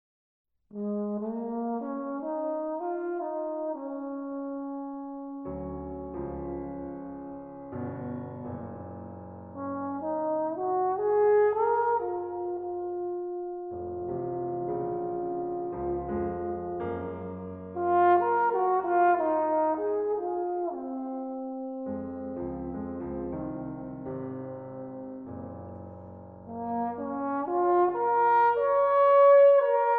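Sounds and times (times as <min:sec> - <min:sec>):
trombone playing a blues ballad: 0:00.7 - 0:05.4, 0:09.5 - 0:22.7, 0:26.5 - 0:29.9
piano playing: 0:00.8 - 0:29.9.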